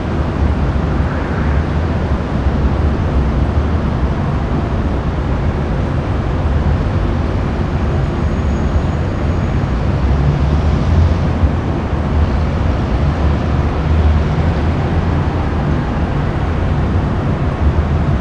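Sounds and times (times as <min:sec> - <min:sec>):
city ambience: 0:00.0 - 0:18.1.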